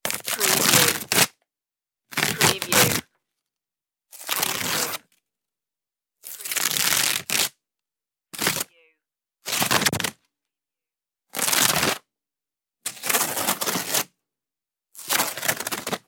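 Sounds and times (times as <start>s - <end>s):
cardboard ripping: 0.0s - 1.3s, 2.1s - 3.0s, 4.2s - 5.0s, 6.2s - 7.5s, 8.4s - 8.7s, 9.5s - 10.1s, 12.9s - 14.1s, 15.0s - 16.0s.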